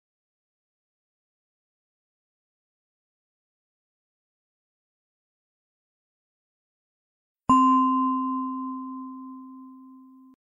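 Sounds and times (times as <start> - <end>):
meditation bell ringing: 7.5 - 10.4.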